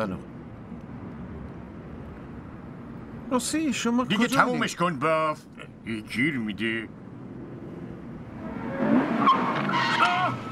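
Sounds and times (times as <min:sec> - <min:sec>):
speech: 0:00.0 - 0:00.3, 0:03.3 - 0:07.0
motorcycle skidding with tire squeal: 0:08.4 - 0:10.4.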